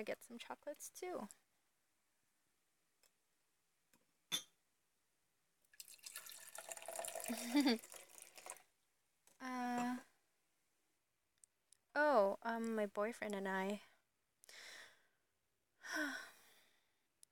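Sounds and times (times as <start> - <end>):
speech: 0.0 - 1.4, 7.3 - 8.0, 9.4 - 10.1, 12.0 - 13.9, 15.9 - 16.3
wine pouring into a glass: 5.8 - 8.7.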